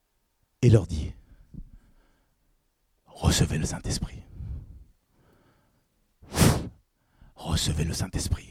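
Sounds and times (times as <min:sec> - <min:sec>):
speech: 0:00.6 - 0:01.2, 0:03.3 - 0:04.3, 0:07.4 - 0:08.5
breath blown out hard: 0:06.2 - 0:06.8.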